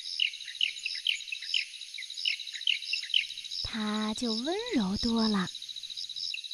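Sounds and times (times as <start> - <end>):
Taiwan bulbul song: 0.0 - 6.5
steady high insect-like hiss: 0.0 - 6.5
speech: 3.7 - 5.6.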